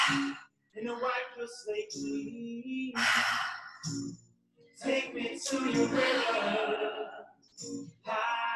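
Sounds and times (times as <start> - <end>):
deep rhythmic breathing during a guided breathing exercise: 0.0 - 0.5, 3.0 - 4.1
speech: 0.1 - 4.2, 4.8 - 8.4
laughter: 4.9 - 7.4.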